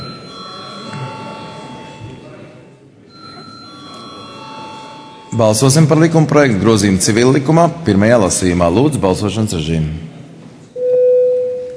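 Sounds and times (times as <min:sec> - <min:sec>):
parliament chamber bell ringing before a vote: 0:00.0 - 0:02.4, 0:03.1 - 0:06.4
murmur of room noise and voices in a large hall: 0:00.0 - 0:10.8
speech: 0:05.4 - 0:10.1.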